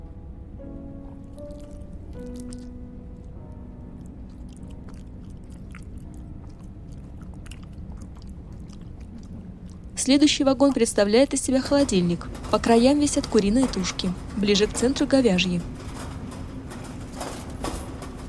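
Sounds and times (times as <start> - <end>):
constant low rumble: 0.0 - 18.2
biting and chewing a protein bar: 1.2 - 10.0
speech: 10.0 - 15.8.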